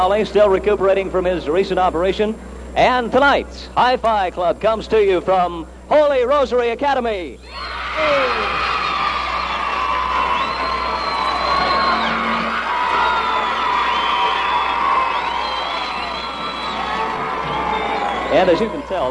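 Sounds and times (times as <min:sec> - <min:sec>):
speech: 0:00.0 - 0:08.6, 0:18.3 - 0:19.0
crowd of kids cheering and shouting at a school: 0:07.4 - 0:19.0
kids' high-pitched whoops and yells: 0:07.4 - 0:19.0.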